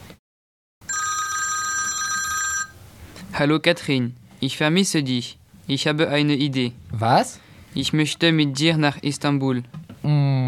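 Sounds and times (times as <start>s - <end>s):
telephone ringing for an incoming call: 0.8s - 2.8s
speech: 3.4s - 10.4s.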